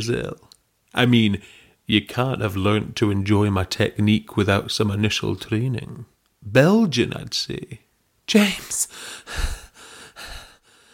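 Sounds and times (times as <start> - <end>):
speech: 0.0 - 9.6
woman panting in quick breathy gasps: 8.9 - 10.9.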